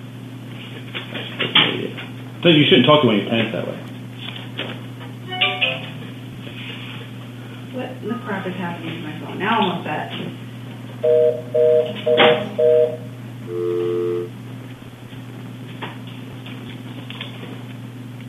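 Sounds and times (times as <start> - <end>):
steady electrical hum: 0.0 - 18.2
speech: 1.0 - 3.9, 8.0 - 10.4, 11.0 - 14.4
phone dialing tones: 11.0 - 14.3.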